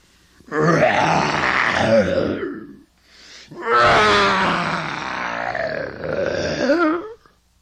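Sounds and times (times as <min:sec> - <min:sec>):
lion roaring: 0:00.5 - 0:02.8, 0:03.6 - 0:06.8.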